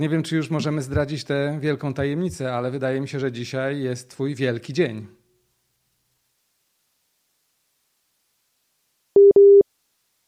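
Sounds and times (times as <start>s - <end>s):
speech: 0.0s - 5.2s
telephone busy tone after a dropped phone connection: 9.2s - 9.6s.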